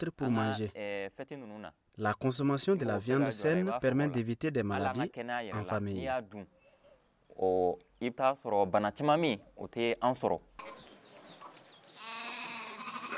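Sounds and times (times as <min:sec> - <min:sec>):
speech: 0:00.0 - 0:06.6, 0:07.4 - 0:10.8
sheep bleating: 0:12.0 - 0:13.1.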